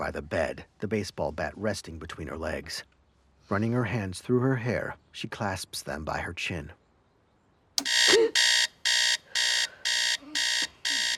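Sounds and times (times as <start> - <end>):
speech: 0.0 - 2.9, 3.5 - 6.8, 7.8 - 8.6
radio alarm clock electronic buzzing: 7.8 - 11.1.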